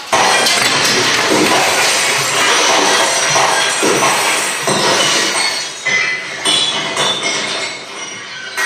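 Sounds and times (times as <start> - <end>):
glass wall shattering from a thrown stone on a stage: 0.0 - 8.6
glass shards clinking and tinkling: 0.1 - 8.6.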